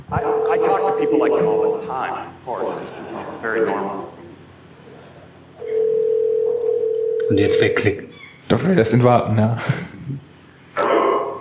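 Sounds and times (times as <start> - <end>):
continuous telephone tone while a call is placed: 0.1 - 2.0, 5.6 - 7.9
speech: 0.1 - 4.1, 7.3 - 10.2.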